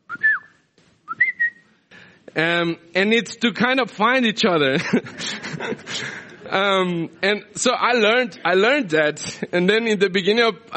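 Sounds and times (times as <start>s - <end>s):
person whistling a short family signal call: 0.0s - 1.8s
speech: 2.3s - 10.7s
laughter: 4.7s - 6.8s.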